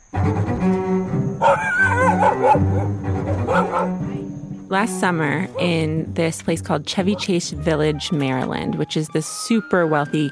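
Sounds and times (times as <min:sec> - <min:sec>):
low steady musical backing: 0:00.0 - 0:10.2
big golden doodle barking and yipping at a dog park: 0:01.4 - 0:04.0, 0:05.5 - 0:05.8, 0:07.1 - 0:07.4
speech: 0:01.5 - 0:03.0, 0:04.7 - 0:10.2.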